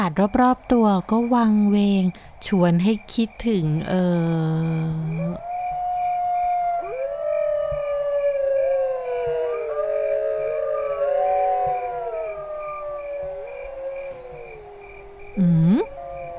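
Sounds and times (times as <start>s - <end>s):
speech: 0.0s - 5.5s
pack of dogs howling at night: 5.1s - 16.3s.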